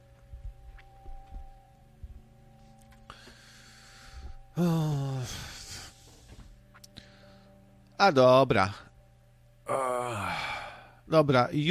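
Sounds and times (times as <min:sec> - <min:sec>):
soft rhythmic heavy breathing: 0:03.0 - 0:07.7
speech: 0:04.6 - 0:04.9, 0:08.0 - 0:08.8, 0:11.1 - 0:11.6.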